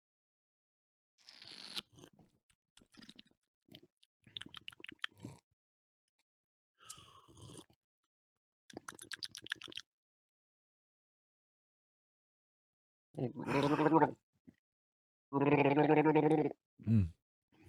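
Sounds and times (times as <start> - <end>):
person gargling a mouthful of beer: 13.3 - 14.2, 15.4 - 17.1.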